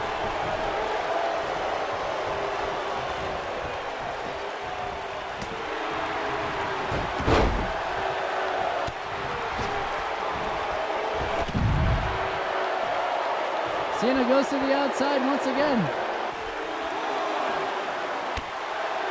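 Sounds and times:
arena crowd booing: 0.0 - 19.1
body impact from a clothesline in a wrestling ring: 6.9 - 7.8
speech: 14.4 - 16.0.

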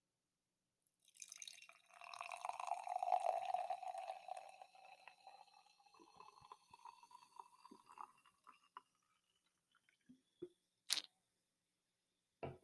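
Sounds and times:
cider pouring into a glass: 1.0 - 10.1
drips of cider: 1.2 - 11.0.

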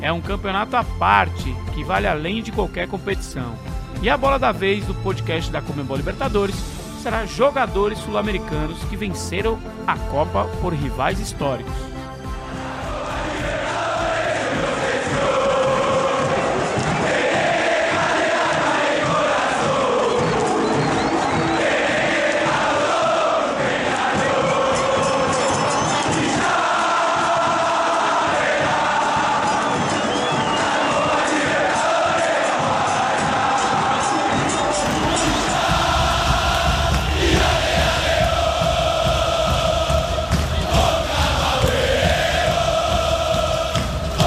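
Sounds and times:
speech: 0.0 - 12.0
large stadium crowd of football fans chanting: 12.3 - 44.2.

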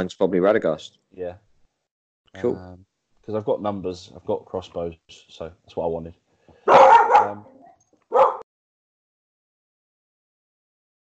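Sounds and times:
speech: 0.0 - 1.5, 2.3 - 7.5
dog barking: 6.6 - 8.5.

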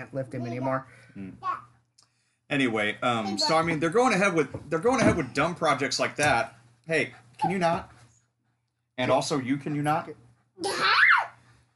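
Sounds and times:
speech: 0.0 - 1.6, 2.5 - 8.0, 9.0 - 11.0
toddler high-pitched squeal: 10.6 - 11.4.

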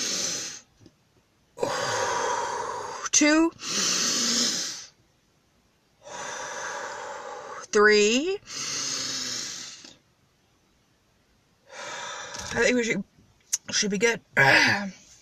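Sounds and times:
deep breathing exercise inhales and exhales to expand the diaphragm: 0.0 - 0.7, 1.6 - 5.0, 6.0 - 7.7, 8.4 - 10.0, 11.6 - 12.6
speech: 3.1 - 3.9, 7.8 - 8.7, 12.6 - 13.1, 13.7 - 15.0.

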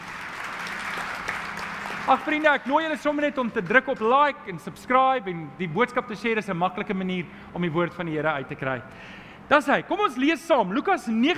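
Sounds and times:
church audience applauding: 0.0 - 3.8
speech: 2.1 - 11.3.

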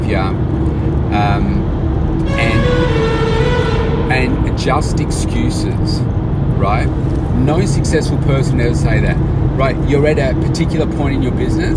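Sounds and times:
traffic rumble echoing in an enclosed tunnel: 0.0 - 11.7
speech: 0.1 - 2.6, 4.2 - 11.7
short car horn blasts in a tunnel: 2.2 - 4.6.

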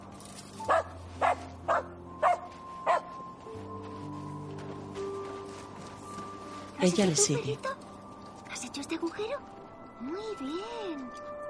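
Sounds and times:
steady tonal background: 0.0 - 11.4
dog barking: 0.7 - 3.1
speech: 6.8 - 7.8, 8.8 - 11.3.

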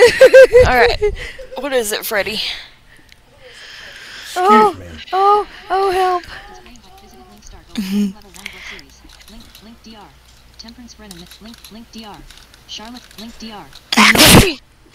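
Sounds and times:
speech: 0.7 - 2.7, 4.4 - 6.5, 7.8 - 8.2, 9.9 - 14.7
person sneezing: 14.0 - 14.6.

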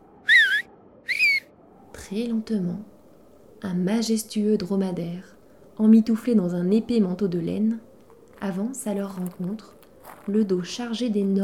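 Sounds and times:
faint low hum: 0.0 - 11.4
person whistling toward the stables from a castle courtyard: 0.3 - 1.5
speech: 2.1 - 3.0, 3.6 - 11.4.

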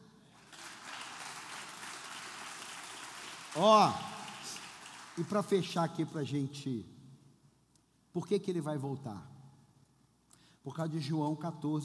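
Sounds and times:
audience applause: 0.4 - 5.7
speech: 3.6 - 4.1, 5.2 - 6.9, 8.2 - 9.3, 10.6 - 11.8.

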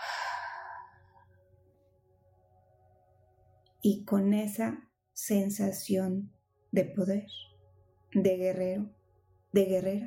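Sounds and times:
strong breathy exhale during a meditation breathing exercise: 0.0 - 1.1
speech: 3.8 - 7.5, 8.1 - 10.0.

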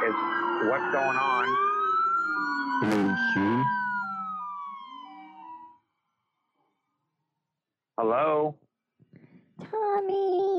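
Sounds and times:
brief bursts of noise: 0.0 - 4.2
emergency vehicle siren wailing: 0.0 - 5.9
speech: 0.6 - 1.7, 2.8 - 3.8, 8.0 - 8.6.

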